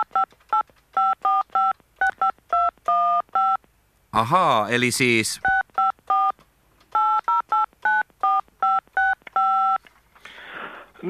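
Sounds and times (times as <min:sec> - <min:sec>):
DTMF tones of a telephone number being dialed: 0:00.0 - 0:03.6, 0:05.4 - 0:09.8
speech: 0:04.2 - 0:05.5.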